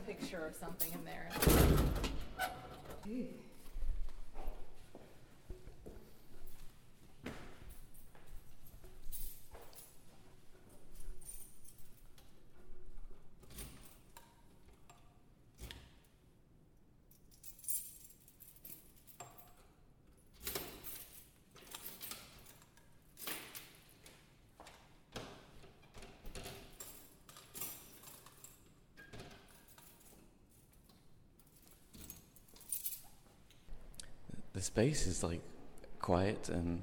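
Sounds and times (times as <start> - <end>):
faint room noise: 0.0 - 36.8
speech: 0.1 - 3.5, 34.8 - 36.8
keys jangling and clinking: 7.6 - 16.2, 17.1 - 24.4, 25.8 - 33.7.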